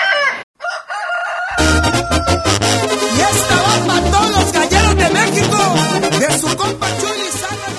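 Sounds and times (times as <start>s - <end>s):
rooster crowing: 0.0s - 2.7s
fuller burst of sound: 3.0s - 7.1s.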